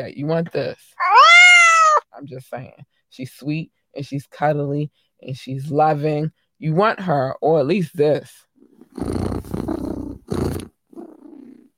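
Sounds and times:
speech: 0:00.0 - 0:01.1, 0:02.2 - 0:09.3
cat purring with a loud rumbling vibration: 0:08.6 - 0:11.7.

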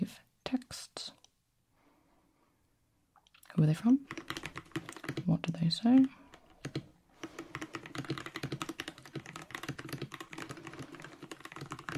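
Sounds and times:
speech: 0:03.6 - 0:04.3, 0:05.3 - 0:06.2
keyboard typing in shorthand: 0:04.0 - 0:11.9.

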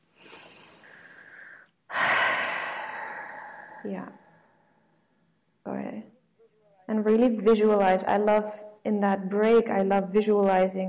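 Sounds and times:
deep cleansing breath: 0:00.2 - 0:05.3
speech: 0:03.8 - 0:04.2, 0:06.9 - 0:10.8.

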